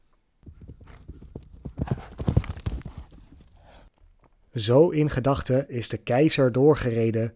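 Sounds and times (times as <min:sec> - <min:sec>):
black horse hooves clip-clopping along a path at night: 0:00.4 - 0:03.9
speech: 0:04.6 - 0:07.3.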